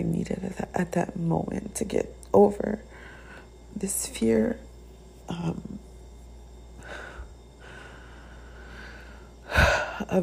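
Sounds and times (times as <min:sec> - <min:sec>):
speech: 0:00.0 - 0:02.9, 0:03.8 - 0:04.7, 0:05.3 - 0:05.8, 0:10.0 - 0:10.2
quiet hum: 0:00.0 - 0:10.2
rough breath gusting into a microphone: 0:02.8 - 0:03.6, 0:06.8 - 0:10.0.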